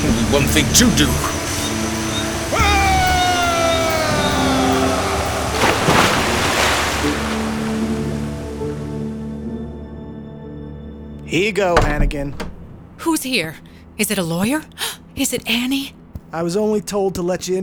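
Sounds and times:
speech: 0:00.3 - 0:01.4, 0:11.3 - 0:17.6
rushing waterfall: 0:01.2 - 0:08.9.

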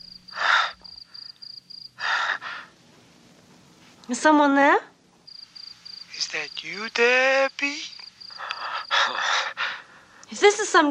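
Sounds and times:
steady high insect-like chirp: 0:00.0 - 0:02.4, 0:05.2 - 0:09.6
voice mimicking heavy breathing down a phone line: 0:00.3 - 0:01.4, 0:02.0 - 0:02.8, 0:08.3 - 0:10.2
speech: 0:04.1 - 0:04.9, 0:06.4 - 0:07.9, 0:10.3 - 0:10.8.

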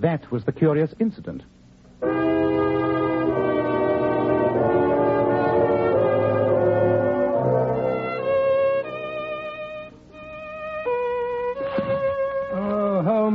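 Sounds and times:
speech: 0:00.0 - 0:01.6
solo violin playing long sustained notes with vibrato: 0:02.0 - 0:12.6.

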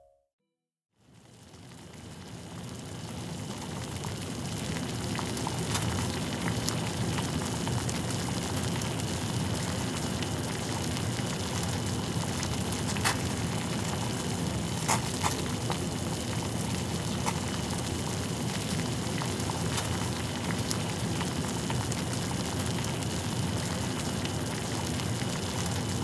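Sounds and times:
water boiling with thick low bubbling churn: 0:01.0 - 0:26.0
faint higher pops and ticks: 0:14.8 - 0:15.8.

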